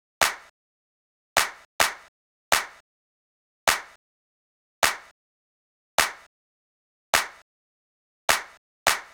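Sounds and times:
clap drum track in C minor: 0.2 - 0.5, 1.4 - 2.8, 3.7 - 4.0, 4.8 - 5.1, 6.0 - 6.3, 7.2 - 7.4, 8.3 - 9.1.

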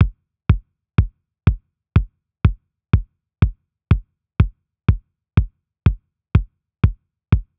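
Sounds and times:
big EDM kick drum loop in future house style: 0.0 - 2.1, 3.0 - 4.5, 5.4 - 7.5.

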